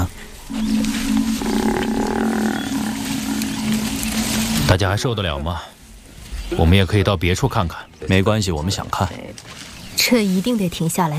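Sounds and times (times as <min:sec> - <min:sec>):
African buffalo bellowing in distress: 0:00.5 - 0:04.7
speech: 0:04.8 - 0:05.7, 0:06.5 - 0:11.1.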